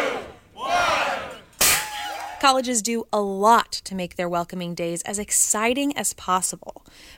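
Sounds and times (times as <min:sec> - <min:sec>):
crowd of staff and upperclassmen cheering and whooping at University of Portland: 0:00.1 - 0:02.5
speech: 0:02.5 - 0:07.1.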